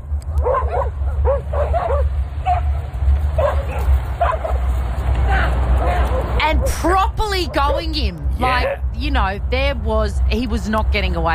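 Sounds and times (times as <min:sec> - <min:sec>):
several loose dogs barking and yipping while chasing a man: 0:00.3 - 0:04.8, 0:05.8 - 0:06.9
speech: 0:06.8 - 0:11.3.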